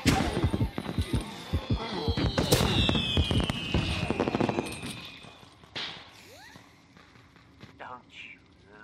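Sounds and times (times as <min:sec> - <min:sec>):
firework whistling streak: 0:00.0 - 0:06.8
fireworks exploding: 0:00.0 - 0:07.8.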